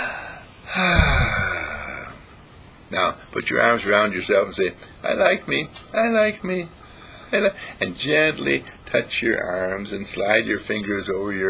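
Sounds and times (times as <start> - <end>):
deep breath in and out during a guided relaxation exercise: 0.0 - 2.2
speech: 2.9 - 11.4.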